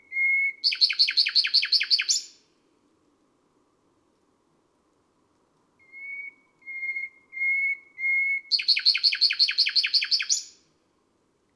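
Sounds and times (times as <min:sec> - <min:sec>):
nightingale singing on a May night: 0:00.0 - 0:02.4, 0:05.8 - 0:10.6.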